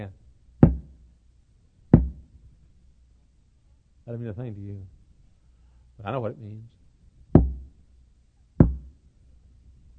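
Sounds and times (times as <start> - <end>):
heavy hollow knocking on a door: 0.6 - 0.9, 2.0 - 2.2, 7.4 - 7.7, 8.6 - 8.9
speech: 4.1 - 5.0, 6.0 - 6.8.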